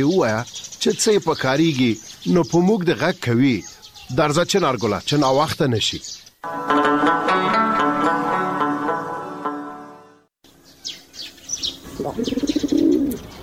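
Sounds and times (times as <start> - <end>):
speech: 0.0 - 7.2
harmonic music: 6.4 - 10.3
pigeon cooing on top of a wall: 11.8 - 13.3.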